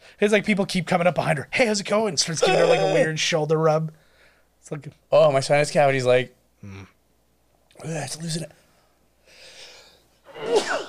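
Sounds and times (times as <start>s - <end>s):
speech: 0.2s - 4.0s, 4.6s - 7.0s, 7.8s - 8.6s
person sneezing: 10.3s - 10.8s.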